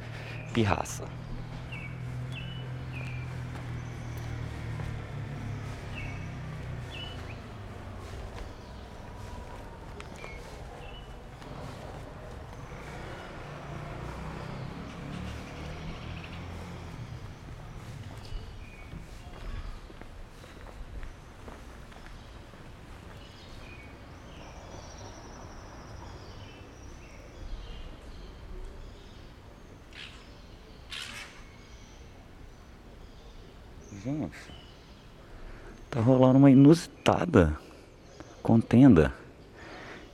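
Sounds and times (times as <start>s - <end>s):
rufous hornero and chalk-browed mockingbird calling outdoors: 0.0s - 40.1s
speech: 0.6s - 1.2s, 36.7s - 37.6s, 38.5s - 39.2s
steady crunching footsteps: 1.1s - 24.0s.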